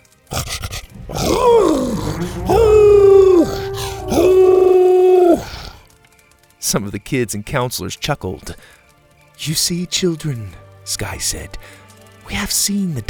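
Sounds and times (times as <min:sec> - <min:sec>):
dog howling: 0:00.3 - 0:05.8
speech: 0:02.2 - 0:02.7, 0:06.7 - 0:08.8, 0:09.4 - 0:13.0.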